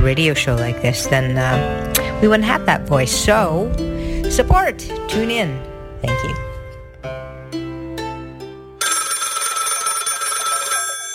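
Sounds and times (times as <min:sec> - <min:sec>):
speech: 0:00.0 - 0:07.6
phone ringing with a melodic electronic ringtone: 0:08.8 - 0:11.1.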